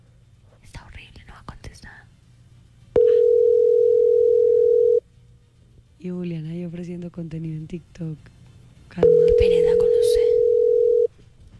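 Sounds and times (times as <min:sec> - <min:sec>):
telephone beep before a voicemail greeting: 0:03.0 - 0:05.0, 0:09.0 - 0:11.1
speech: 0:06.0 - 0:08.4, 0:09.0 - 0:10.3.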